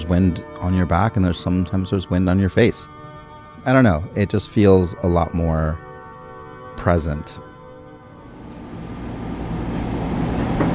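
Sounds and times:
speech: 0.1s - 3.0s, 3.6s - 5.8s, 6.8s - 7.5s
light rail train rumbling in motion above ground heard from aboard: 8.4s - 10.7s.

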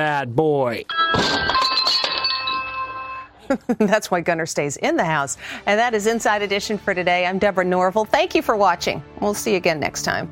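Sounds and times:
speech: 0.0s - 1.5s, 3.5s - 10.3s
door glass pane shattering from a dog smashing through: 0.9s - 3.3s
glass shards tinkling: 0.9s - 3.3s.

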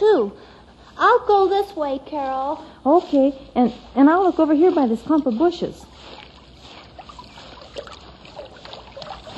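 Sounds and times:
speech: 0.0s - 6.2s
brook water flowing with gurgles and splashes: 3.8s - 9.3s.

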